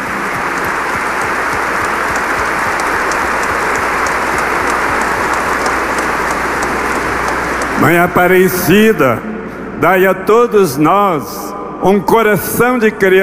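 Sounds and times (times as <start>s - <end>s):
large crowd applauding children at a Catholic prayer service: 0.0s - 8.4s
speech: 7.8s - 13.2s.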